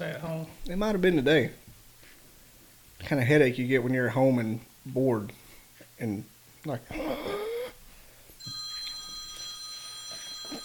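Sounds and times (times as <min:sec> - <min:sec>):
speech: 0:00.0 - 0:01.6, 0:03.0 - 0:05.4, 0:06.0 - 0:07.3
telephone ringing with electronic trill: 0:08.4 - 0:10.6.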